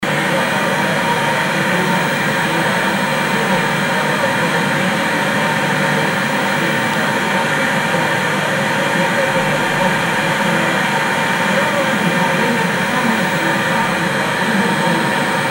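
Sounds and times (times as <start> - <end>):
interference noise: 0.0 - 15.4.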